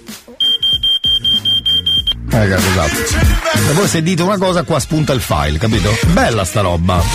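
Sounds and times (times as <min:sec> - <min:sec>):
piercing electronic alarm beeping: 0:00.4 - 0:02.2
speech: 0:02.4 - 0:07.1.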